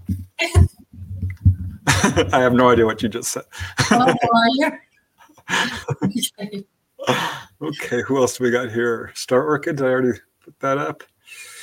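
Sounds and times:
laughter: 1.8 - 4.6, 5.5 - 6.2
speech: 2.0 - 4.9, 5.5 - 11.5
person sneezing: 7.0 - 7.5.

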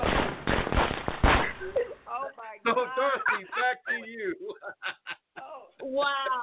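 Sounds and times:
firecracker pops and crackles: 0.0 - 1.8
laughter: 1.5 - 6.4.

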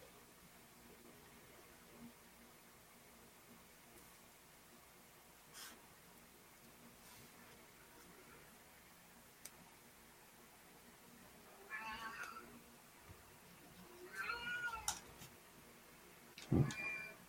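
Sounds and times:
quiet hiss of noise: 0.0 - 17.2
pet cat meowing: 11.7 - 12.5, 14.0 - 15.0, 16.6 - 17.2.

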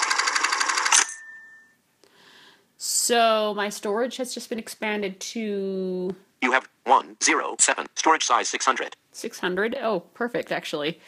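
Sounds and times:
video game interface mechanical rattle: 0.0 - 1.2
speech: 3.1 - 11.0.

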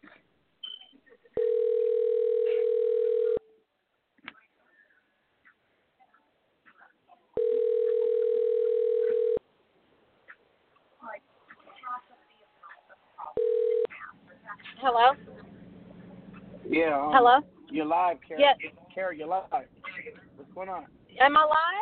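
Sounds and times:
ringback tone of an outgoing phone call on a live radio broadcast: 1.4 - 3.5, 7.4 - 9.4, 13.4 - 13.9
speech: 16.8 - 19.8, 20.6 - 21.8.

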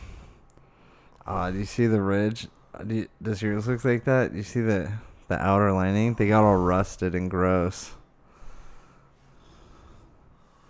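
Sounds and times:
heavy noisy breathing through the nose: 0.0 - 1.3, 7.9 - 10.6
speech: 1.3 - 8.0.

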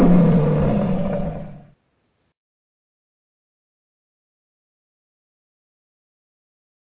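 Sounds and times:
deep rumbling lion roar: 0.0 - 1.7.

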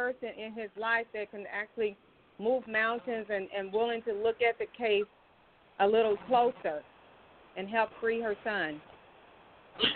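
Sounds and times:
quiet hiss: 0.0 - 9.9
speech: 0.1 - 5.2, 5.8 - 6.9, 7.6 - 8.9, 9.8 - 9.9
sneeze: 9.8 - 9.9.

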